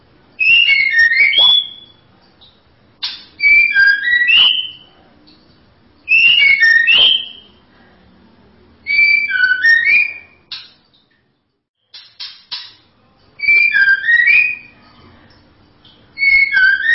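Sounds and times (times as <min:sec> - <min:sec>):
white-rumped shama melodious whistled phrases: 0:00.4 - 0:02.1, 0:03.4 - 0:04.9, 0:06.1 - 0:07.5, 0:08.9 - 0:10.4, 0:13.4 - 0:14.8, 0:16.2 - 0:16.9.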